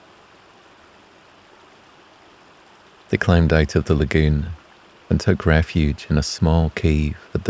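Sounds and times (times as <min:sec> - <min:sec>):
tropical downpour in the jungle: 0:02.2 - 0:07.4
speech: 0:03.1 - 0:07.4.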